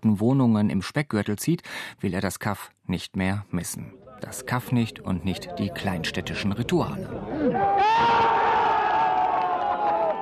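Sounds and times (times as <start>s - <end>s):
speech: 0.0s - 8.4s
crowd cheering and shouting after a football goal: 7.2s - 10.2s.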